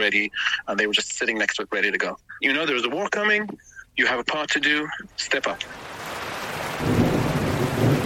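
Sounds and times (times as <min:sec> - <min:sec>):
speech: 0:00.0 - 0:05.9
steady hiss of falling rain: 0:00.0 - 0:08.0
deep rumble of thunder: 0:06.0 - 0:08.0.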